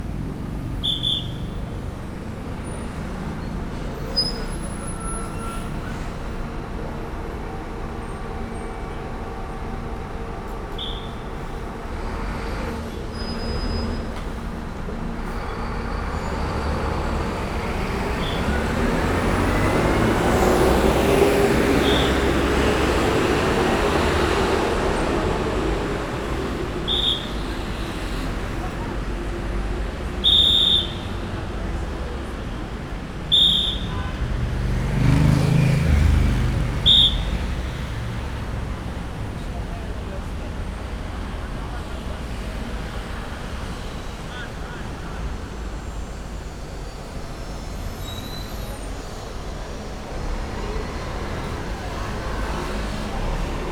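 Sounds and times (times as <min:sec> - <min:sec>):
vehicle traffic: 0:00.0 - 0:53.7
whistle directing vehicle traffic: 0:00.8 - 0:01.6, 0:04.1 - 0:06.0, 0:10.8 - 0:11.3, 0:18.2 - 0:18.7, 0:21.8 - 0:22.4, 0:26.8 - 0:27.6, 0:30.2 - 0:31.4, 0:33.3 - 0:34.2, 0:36.8 - 0:37.7.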